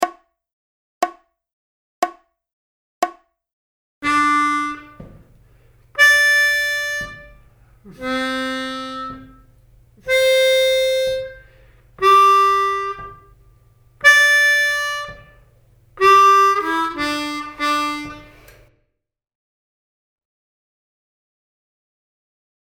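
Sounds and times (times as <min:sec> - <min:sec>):
harmonica playing easy V IV I licks: 0:04.0 - 0:18.7.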